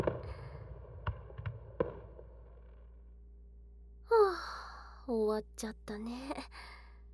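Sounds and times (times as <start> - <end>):
finale fireworks bursting: 0.0 - 2.8
speech: 5.1 - 6.6.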